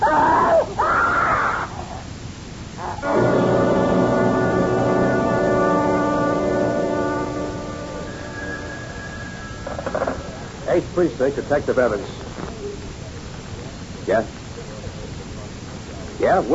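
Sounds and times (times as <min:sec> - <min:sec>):
woman screaming: 0:00.0 - 0:01.7
long steady droning blare: 0:02.8 - 0:11.6
speech: 0:11.0 - 0:12.3, 0:14.1 - 0:14.4, 0:16.2 - 0:16.5.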